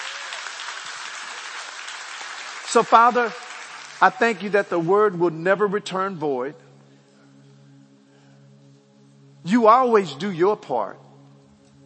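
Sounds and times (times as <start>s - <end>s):
church congregation clapping hands in praise during a sermon: 0.0s - 5.3s
speech: 2.7s - 3.4s, 4.0s - 6.6s, 9.4s - 11.0s.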